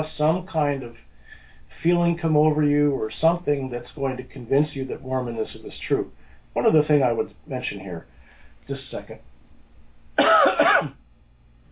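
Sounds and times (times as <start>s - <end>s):
speech: 0.0s - 1.1s, 1.8s - 9.3s, 10.2s - 11.0s
harsh raspy phlegmy cough: 10.2s - 11.0s.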